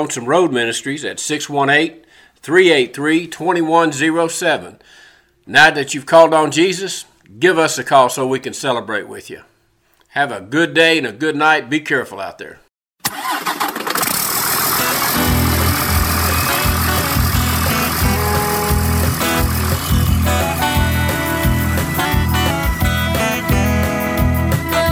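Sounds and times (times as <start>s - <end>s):
speech: 0.0s - 9.5s, 10.1s - 13.3s
vehicle engine driving on a highway: 14.2s - 24.4s.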